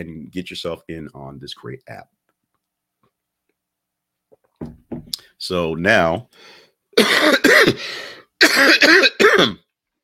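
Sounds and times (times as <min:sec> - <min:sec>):
speech: 0:00.0 - 0:02.2, 0:05.4 - 0:09.6
person clearing throat: 0:07.0 - 0:07.8, 0:08.4 - 0:09.7
person coughing: 0:07.0 - 0:09.7.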